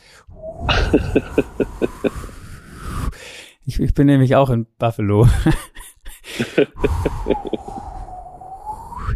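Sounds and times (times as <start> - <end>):
speech: 0.3 - 2.3, 3.7 - 5.8, 6.4 - 7.4
wind roaring across the microphone: 0.3 - 3.2, 6.7 - 9.1
laughter: 0.7 - 2.3, 5.3 - 7.8.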